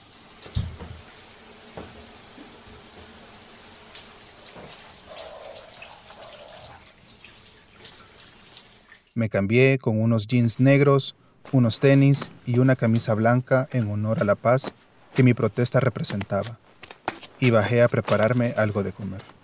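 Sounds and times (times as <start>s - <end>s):
shower spraying water: 0.0s - 9.1s
speech: 9.2s - 16.8s, 17.4s - 19.4s.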